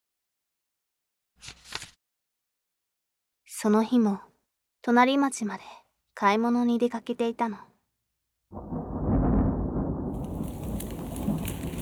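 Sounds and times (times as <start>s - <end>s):
speech: 3.5s - 7.7s, 8.5s - 8.8s
deep rumble of thunder: 8.5s - 11.8s
heavy rain shower in a forest: 8.6s - 11.8s.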